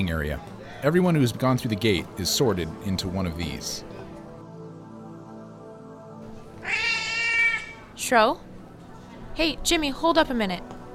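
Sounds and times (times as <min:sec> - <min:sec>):
speech: 0:00.0 - 0:03.9, 0:08.0 - 0:08.5, 0:09.4 - 0:10.7
cat meowing: 0:06.6 - 0:07.9.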